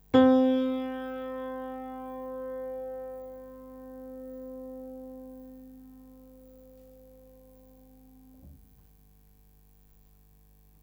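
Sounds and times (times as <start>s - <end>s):
piano note C: 0.0s - 8.5s.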